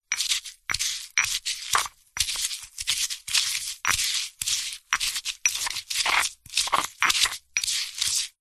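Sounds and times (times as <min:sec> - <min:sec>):
herb leaves grinding in stone pestle and mortar: 0:00.1 - 0:08.3.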